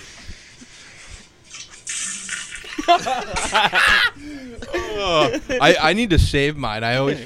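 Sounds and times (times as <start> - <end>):
steady hissing water running and gushing: 1.5 - 3.0
people laughing and chuckling: 2.7 - 5.8
speech: 2.9 - 4.3, 4.9 - 7.2.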